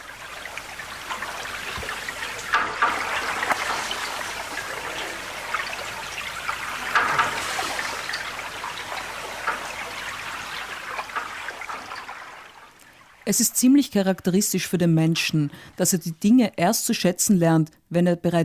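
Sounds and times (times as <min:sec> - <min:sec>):
water trickling and bubbling in Lake Constance: 0:00.0 - 0:13.3
speech: 0:13.3 - 0:18.4.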